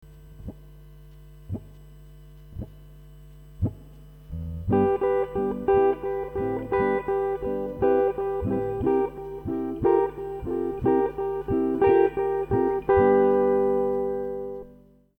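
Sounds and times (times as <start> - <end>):
blues guitar licks: 3.7 - 15.0.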